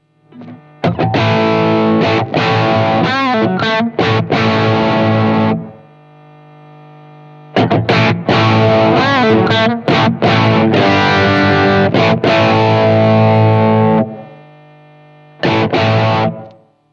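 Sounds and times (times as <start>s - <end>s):
heavily distorted instrument through an audio effects unit with power amp drive: 0.3s - 5.7s, 7.6s - 14.4s, 15.4s - 16.6s.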